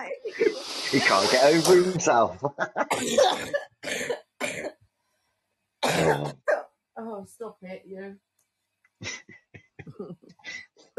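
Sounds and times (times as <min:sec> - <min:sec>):
speech: 0:00.2 - 0:04.1, 0:06.0 - 0:06.4, 0:07.2 - 0:08.3, 0:09.0 - 0:10.6
harsh coughing fit: 0:02.9 - 0:04.7, 0:05.8 - 0:06.6.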